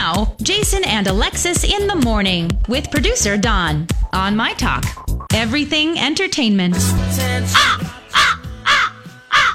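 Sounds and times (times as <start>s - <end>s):
speech: 0.2s - 7.8s
crow cawing: 7.6s - 9.5s.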